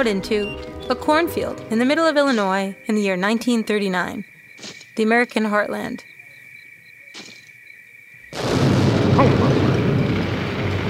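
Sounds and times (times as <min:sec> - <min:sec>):
speech: 0:00.0 - 0:06.1, 0:09.2 - 0:09.6
loud explosion: 0:08.3 - 0:10.8.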